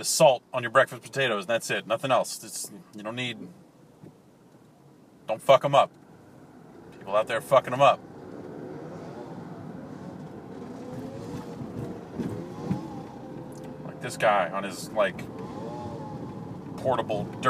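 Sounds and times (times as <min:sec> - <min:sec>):
speech: 0:00.0 - 0:03.7, 0:05.3 - 0:06.0, 0:07.1 - 0:08.1, 0:14.0 - 0:15.5, 0:16.8 - 0:17.4
small motorized bike engine passing by: 0:08.1 - 0:14.0, 0:15.2 - 0:16.8.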